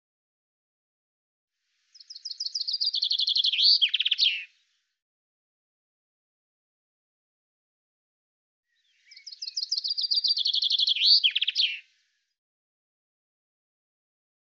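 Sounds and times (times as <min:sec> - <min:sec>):
common chaffinch singing: 0:01.9 - 0:04.5, 0:08.7 - 0:11.9.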